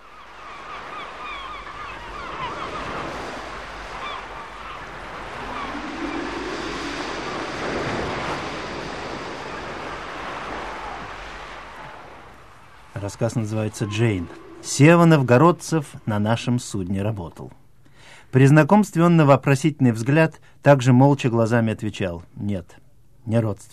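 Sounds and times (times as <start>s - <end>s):
seabirds honking and crying over the waves: 0.0s - 16.6s
steady sea surf washing in: 0.0s - 17.5s
speech: 13.0s - 17.6s, 18.3s - 23.7s.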